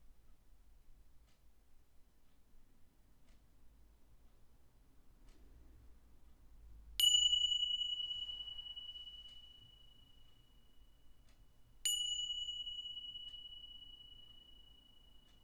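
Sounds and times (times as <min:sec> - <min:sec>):
meditation bell ringing: 0:07.0 - 0:15.4.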